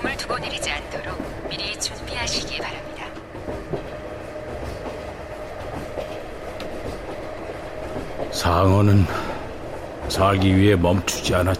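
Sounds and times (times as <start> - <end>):
steady rumble inside a moving train carriage: 0.0 - 11.5
speech: 0.1 - 3.6, 8.5 - 9.2, 10.2 - 11.5.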